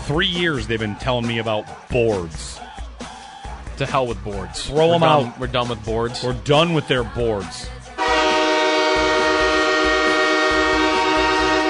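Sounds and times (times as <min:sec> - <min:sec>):
speech: 0:00.1 - 0:02.7, 0:03.8 - 0:07.8
train horn blaring: 0:08.0 - 0:11.6.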